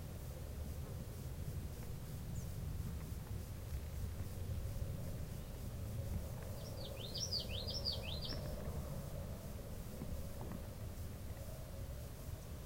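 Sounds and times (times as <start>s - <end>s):
low background noise: 0.0s - 12.6s
common yellowthroat singing: 6.4s - 8.8s.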